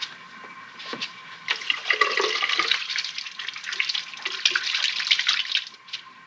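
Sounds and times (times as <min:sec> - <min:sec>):
water running from a tap: 0:01.5 - 0:06.0
splashes and drips from a woman rinsing and shaking her hands: 0:01.5 - 0:06.1.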